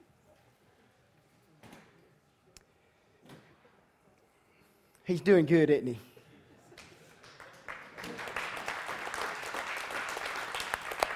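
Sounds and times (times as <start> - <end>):
speech: 5.1 - 6.1
crowd applause: 7.2 - 11.1.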